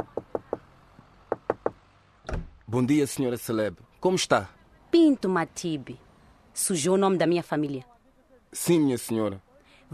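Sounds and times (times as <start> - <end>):
knocking on a door: 0.0 - 0.6, 1.3 - 2.5
speech: 2.7 - 6.0, 6.6 - 7.9, 8.5 - 9.9.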